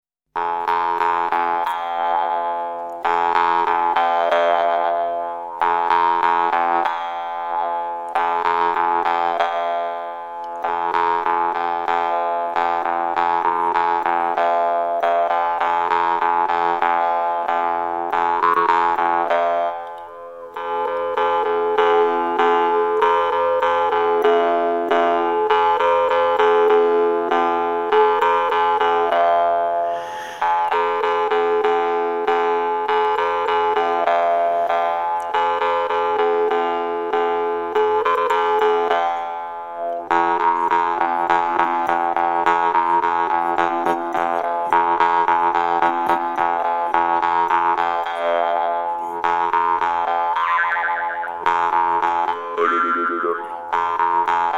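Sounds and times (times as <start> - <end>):
Altai vargan jaw harp: 0.4 - 54.5.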